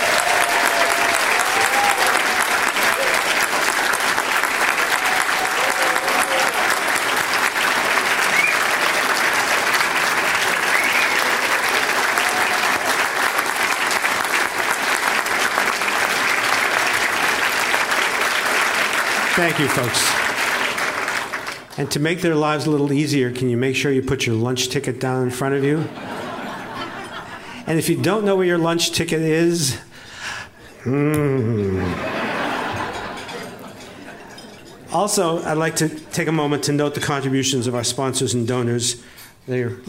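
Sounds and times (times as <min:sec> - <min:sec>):
large conference audience applauding conference staff: 0:00.0 - 0:22.0
speech: 0:19.5 - 0:20.2, 0:21.8 - 0:26.1, 0:27.7 - 0:30.1, 0:30.8 - 0:32.1, 0:34.9 - 0:39.8
laughter: 0:25.6 - 0:27.7, 0:30.7 - 0:34.5.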